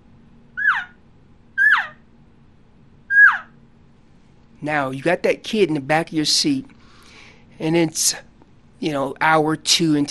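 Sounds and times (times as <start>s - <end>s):
faint low hum: 0.0s - 10.0s
elk calf call imitated by a caller: 0.6s - 1.0s, 1.6s - 2.0s, 3.1s - 3.5s
speech: 4.6s - 6.8s, 7.6s - 10.0s.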